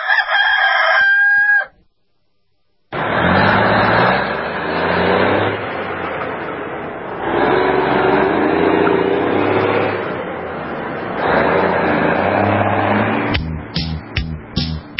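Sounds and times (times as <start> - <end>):
rooster crowing: 0.0 - 1.8
steady broad rumbling noise: 3.0 - 14.9.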